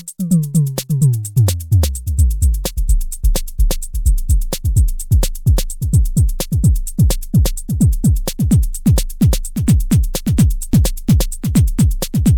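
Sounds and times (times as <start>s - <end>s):
kick drum: 0.3s - 12.3s.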